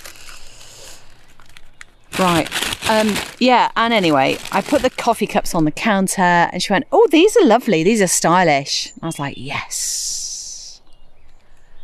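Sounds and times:
plastic packaging crinkling as cut open with scissors: 0.0 - 5.6
speech: 2.2 - 10.1.

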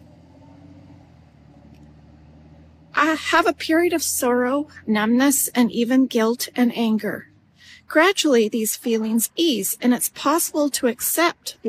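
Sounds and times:
delivery truck driving past with a low droning engine: 0.0 - 8.1
speech: 3.0 - 7.3, 7.9 - 11.6.

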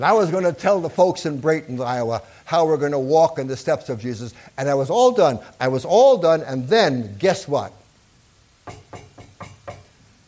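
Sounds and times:
speech: 0.0 - 7.8
knocking on a door: 8.6 - 9.9.

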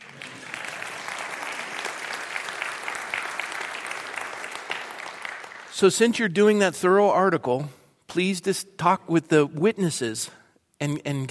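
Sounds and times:
audience clapping: 0.0 - 5.9
speech: 5.8 - 11.3.

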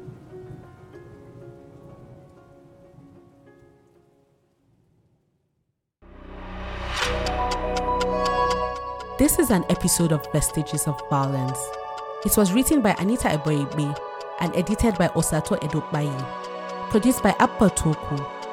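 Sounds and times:
rainy-season rain pattering on a hard surface at a camp for displaced people: 0.0 - 4.7
soft tonal passage: 6.0 - 17.3
speech: 9.2 - 18.4.

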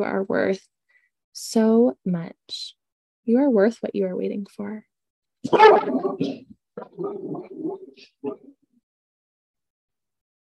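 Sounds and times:
speech: 0.0 - 8.6
frightened dog barking and yelping: 5.5 - 8.5.

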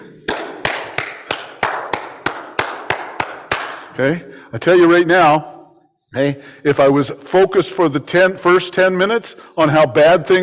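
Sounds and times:
single pair of hands clapping: 0.0 - 4.0
speech: 4.0 - 5.5, 6.1 - 10.4.

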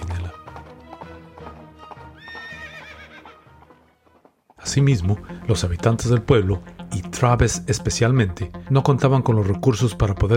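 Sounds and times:
horse hooves galloping: 0.0 - 6.6
horse whinnying: 2.1 - 3.6
speech: 4.7 - 10.3.

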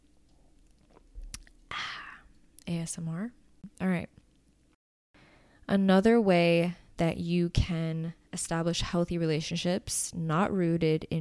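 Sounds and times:
person sipping and slurping soda: 0.3 - 2.4
speech: 2.8 - 4.1, 5.7 - 11.2.

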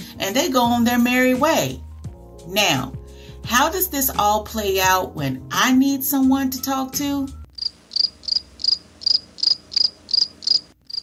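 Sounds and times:
speech: 0.2 - 1.8, 2.4 - 7.4
cricket chirping: 7.6 - 11.0.

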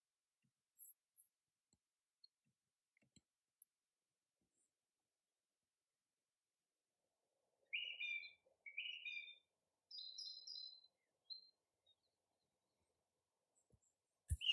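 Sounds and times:
birds chirping and calling: 7.7 - 10.9, 14.3 - 14.5.

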